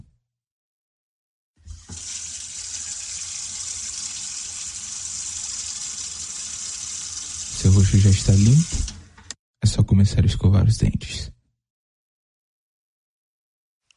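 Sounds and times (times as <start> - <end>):
bathroom tap water running into a sink: 1.7 - 2.3, 8.3 - 9.0
speech: 7.8 - 8.9, 9.7 - 11.4.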